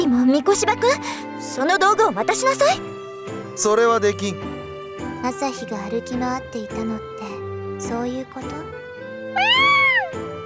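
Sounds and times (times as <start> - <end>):
speech: 0.2 - 3.0, 3.6 - 4.5, 5.2 - 8.8, 9.4 - 9.8
cat meowing: 9.4 - 10.1.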